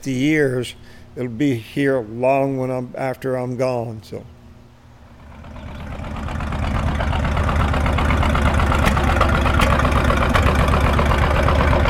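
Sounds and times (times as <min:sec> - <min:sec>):
speech: 0:00.0 - 0:04.4
heavy old tractor engine idling at a tractor pull on a rain-soaked field: 0:05.0 - 0:11.8.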